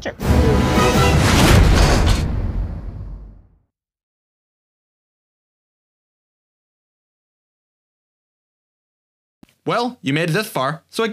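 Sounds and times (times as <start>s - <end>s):
speech: 0.0s - 0.8s, 9.6s - 11.1s
loud broadband explosion: 0.2s - 3.6s.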